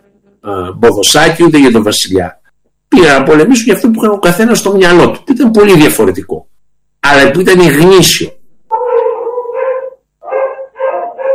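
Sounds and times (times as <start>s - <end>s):
speech: 0.4s - 6.4s, 7.0s - 8.4s
dogs barking and howling at feeding time: 8.7s - 11.3s.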